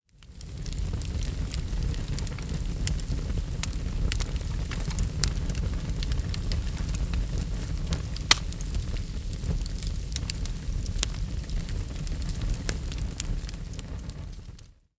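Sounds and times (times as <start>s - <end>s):
firewood: 0.1s - 14.8s.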